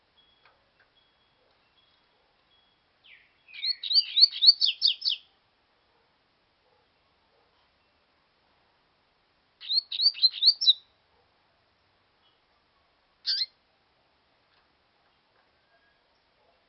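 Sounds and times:
double-collared seedeater singing: 0.2s - 5.4s, 9.6s - 11.0s, 13.2s - 13.6s.

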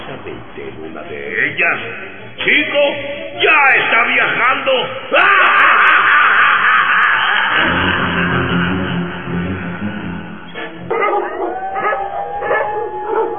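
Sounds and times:
speech: 0.4s - 5.9s
laughter: 5.3s - 13.3s
dogs barking and howling: 10.9s - 13.3s.

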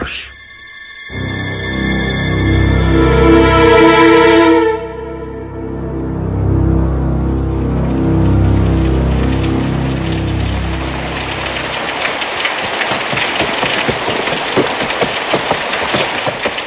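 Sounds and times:
low droning tone: 0.3s - 12.0s
incessant rain hissing: 7.6s - 16.6s
horse-drawn carriage with wooden clatters and knocks: 12.4s - 16.6s.

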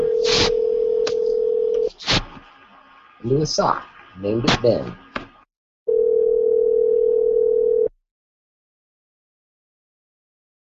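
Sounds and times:
telephone dial tone for a phone call: 0.0s - 1.9s, 5.9s - 7.9s
speech: 3.2s - 5.0s.

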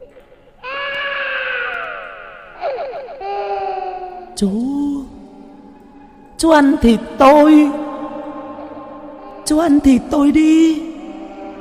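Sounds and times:
eerie childlike crying sound effect in a horror story: 0.0s - 6.3s, 7.9s - 9.9s, 10.8s - 11.6s
speech: 4.4s - 4.8s, 6.4s - 7.8s, 9.5s - 10.9s.

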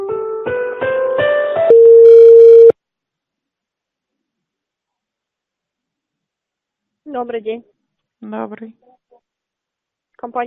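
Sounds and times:
telephone line tones while waiting for an operator: 1.7s - 2.7s
speech: 7.2s - 9.0s, 10.2s - 10.4s.

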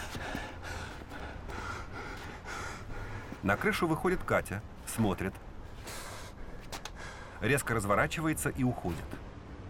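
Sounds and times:
man panting heavily after punching a heavy boxing bag on a rooftop: 0.0s - 3.9s, 5.8s - 7.4s
speech: 3.4s - 5.5s, 7.4s - 9.3s.

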